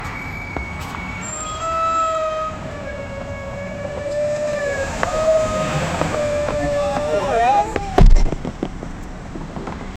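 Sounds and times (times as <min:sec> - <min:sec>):
traffic: 0:00.0 - 0:09.9
people urgently getting off: 0:03.9 - 0:08.7.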